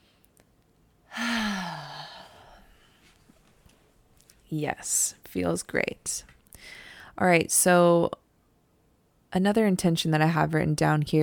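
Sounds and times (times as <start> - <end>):
deep breath let out as a long audible sigh: 1.1 - 3.0
speech: 4.5 - 8.2, 9.3 - 11.2.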